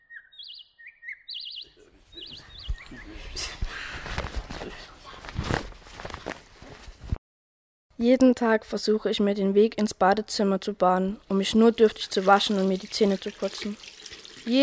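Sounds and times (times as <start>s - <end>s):
morning birds chirping and trilling: 0.0s - 5.2s
rustling and shuffling movement: 1.8s - 7.2s
speech: 8.0s - 14.6s.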